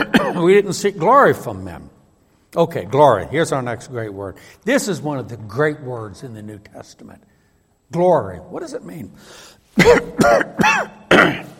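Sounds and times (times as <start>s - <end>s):
person clearing throat: 0.0s - 0.5s, 9.8s - 11.5s
speech: 0.4s - 1.9s, 2.5s - 7.3s, 7.9s - 11.5s.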